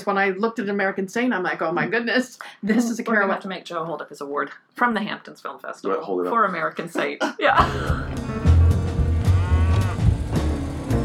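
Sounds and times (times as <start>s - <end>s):
speech: 0.0s - 8.4s
laughter: 7.5s - 8.2s
cows mooing: 8.2s - 10.5s.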